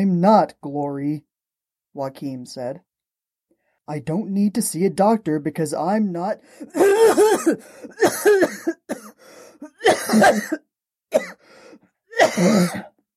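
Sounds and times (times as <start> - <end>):
speech: 0.0 - 1.3, 2.0 - 2.9, 3.9 - 12.9
person gasping: 6.4 - 8.0, 9.0 - 9.8, 11.4 - 13.0
person coughing in a dry hacking fit: 6.6 - 11.5, 12.1 - 13.0.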